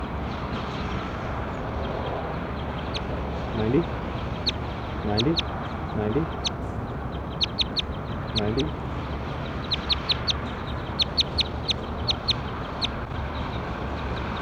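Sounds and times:
steady noise: 0.0 - 14.4
bird calling with short nasal quack-like notes: 2.0 - 13.2
speech: 3.6 - 4.0, 5.0 - 6.6, 8.4 - 8.8
sharp high ticks: 5.2 - 5.4, 7.3 - 8.7, 9.6 - 13.1.

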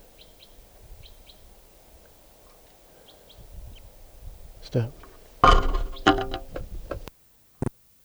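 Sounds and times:
wild bird chirping while foraging in a larch: 0.0 - 7.1
clattering and rustling noises: 3.8 - 7.1.

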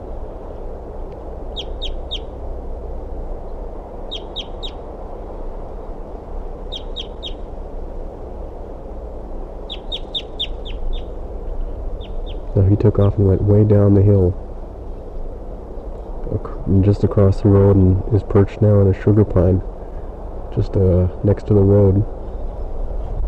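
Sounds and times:
steady low rumble: 0.0 - 23.2
male crossbill clipped calls near the nest tree: 1.5 - 2.3, 4.1 - 4.8, 6.7 - 7.4, 9.7 - 11.1
speech: 12.7 - 14.5, 16.7 - 19.7, 20.6 - 22.2.

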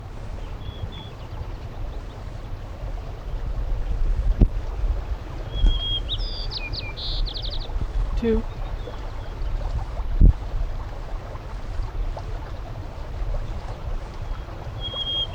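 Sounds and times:
low rumble of wind: 0.0 - 15.3
white-crowned sparrow singing: 5.5 - 8.9, 14.8 - 15.3
speech: 8.2 - 8.5.

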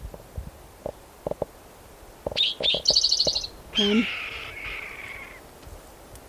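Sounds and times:
spotted toad calling with rapid high-pitched trilled pulses: 2.4 - 5.4
speech: 3.8 - 4.2.

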